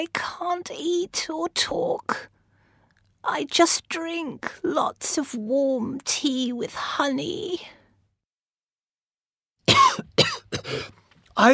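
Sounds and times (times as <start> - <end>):
speech: 0.0 - 2.3, 3.2 - 7.8, 10.7 - 11.5
harsh raspy coughs: 9.6 - 11.0.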